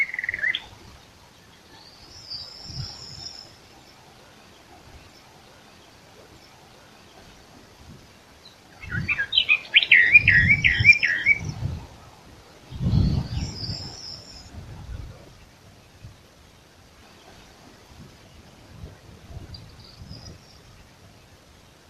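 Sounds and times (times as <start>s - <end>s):
Eastern Orphean Warbler Sylvia crassirostris singing: 0.0s - 7.4s, 8.4s - 11.8s, 12.7s - 14.6s, 19.4s - 21.3s.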